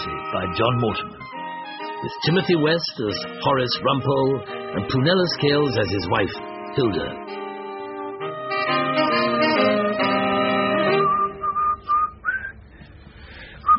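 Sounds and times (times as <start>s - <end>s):
fuller musical passage: 0.0s - 11.7s
speech: 0.3s - 1.4s, 2.0s - 7.3s
person whistling a short cheerful tune: 10.9s - 12.6s.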